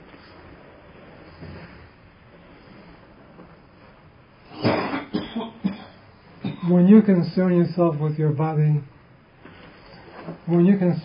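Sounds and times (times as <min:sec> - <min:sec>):
man coughing: 0:04.5 - 0:06.8
speech: 0:06.7 - 0:08.9, 0:10.5 - 0:11.0.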